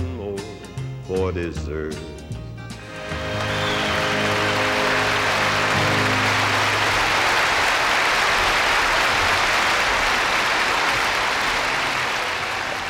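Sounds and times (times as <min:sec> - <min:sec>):
speech: 0:01.1 - 0:02.2
song: 0:02.7 - 0:08.8
large crowd applauding: 0:02.8 - 0:12.8.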